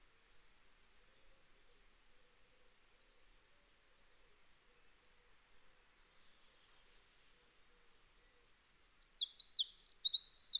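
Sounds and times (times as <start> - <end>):
Eurasian wren Troglodytes troglodytes singing: 8.6 - 10.5.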